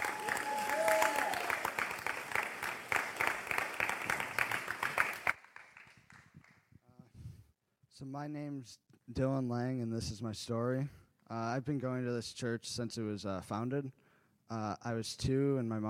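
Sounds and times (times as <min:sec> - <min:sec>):
person whooping: 0:00.0 - 0:01.8
crowd clapping: 0:00.0 - 0:06.7
speech: 0:08.0 - 0:15.8.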